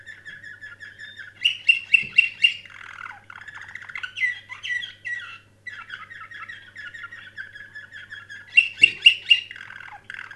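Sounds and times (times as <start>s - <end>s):
canary song with piping notes, warbled rolls and trills: 0.0s - 10.3s
faint hum: 0.0s - 10.3s.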